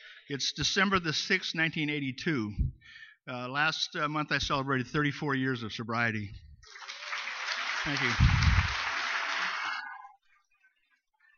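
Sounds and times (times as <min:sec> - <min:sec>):
speech: 0:00.3 - 0:06.5, 0:07.8 - 0:08.5
audience clapping for a speaker: 0:06.6 - 0:10.0.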